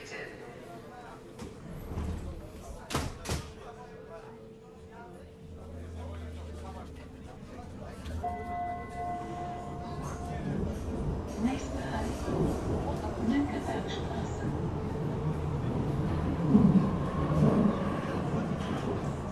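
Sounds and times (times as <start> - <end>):
underground metro train riding beneath the city: 4.8 - 19.3.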